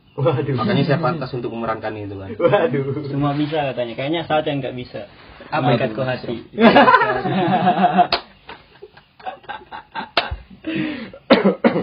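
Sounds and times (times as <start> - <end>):
speech: 0.2 - 8.2
laughter: 6.6 - 11.0
loud harsh coughing: 10.7 - 11.8.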